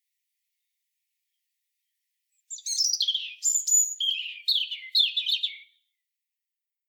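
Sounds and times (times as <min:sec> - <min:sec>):
European robin singing: 0:02.4 - 0:06.0.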